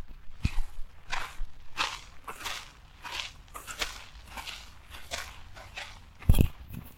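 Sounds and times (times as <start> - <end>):
footsteps of two people walking on a clay path in the Viveros de Coyoacán park: 0.0 - 6.9.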